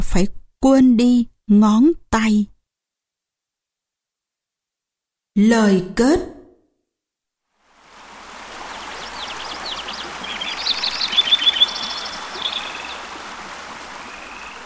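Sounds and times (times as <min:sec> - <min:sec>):
speech: 0:00.1 - 0:02.5, 0:05.4 - 0:06.4
mountain stream water flowing: 0:07.6 - 0:14.6
faint chirps of birds or frogs: 0:08.6 - 0:13.2, 0:13.8 - 0:14.6.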